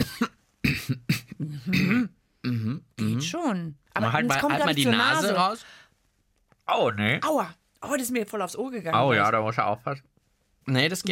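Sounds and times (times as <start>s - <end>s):
person coughing with the mouth closed: 0.0s - 3.2s
speech: 3.4s - 5.8s, 6.7s - 11.1s.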